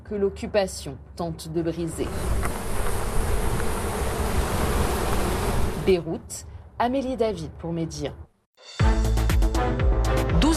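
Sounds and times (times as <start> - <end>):
speech: 0.1 - 2.6, 5.8 - 10.5
many honeybees buzzing: 2.0 - 5.9.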